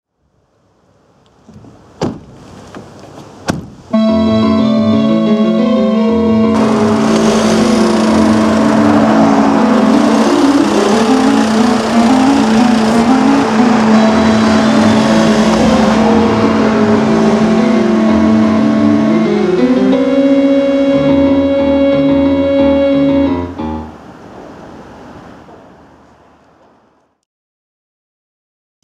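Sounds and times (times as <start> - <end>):
sub vehicle driving away: 4.8 - 26.4.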